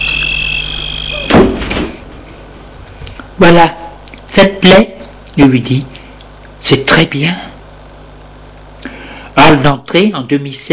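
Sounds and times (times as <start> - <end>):
high-pitched insect trill at night: 0.0 - 1.4
wooden front door of a house swinging shut: 1.0 - 2.0
speech: 3.4 - 3.8, 4.4 - 5.9, 6.6 - 7.5, 9.5 - 10.7.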